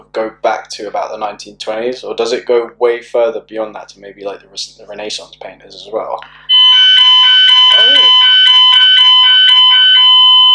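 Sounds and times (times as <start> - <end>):
speech: 0.2 - 6.5
shrill electronic fire alarm blaring during a fire alarm test: 6.2 - 10.5.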